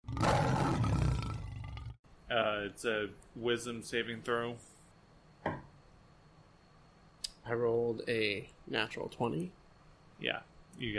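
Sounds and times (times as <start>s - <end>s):
person imitating a big cat's fierce growling roar: 0.0s - 2.0s
speech: 2.3s - 4.7s, 7.5s - 9.6s, 10.2s - 10.9s.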